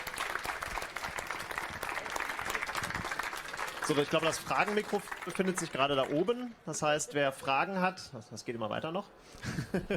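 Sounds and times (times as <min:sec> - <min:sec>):
audience applause: 0:00.0 - 0:06.4
speech: 0:03.9 - 0:09.9.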